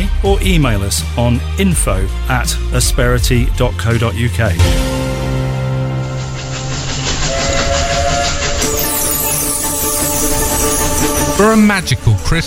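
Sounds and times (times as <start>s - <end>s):
speech: 0.2s - 5.0s, 11.4s - 12.4s
steam train on the Isle of Wight Steam Railway rumbling on rails: 4.6s - 12.4s
whistle-like tone: 6.9s - 11.5s.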